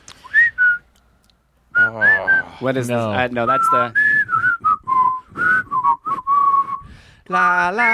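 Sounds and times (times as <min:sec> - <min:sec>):
two men whistling a cartoon theme tune: 0:00.2 - 0:00.9, 0:01.7 - 0:02.6, 0:03.4 - 0:07.0
speech: 0:02.0 - 0:04.1, 0:07.3 - 0:07.9.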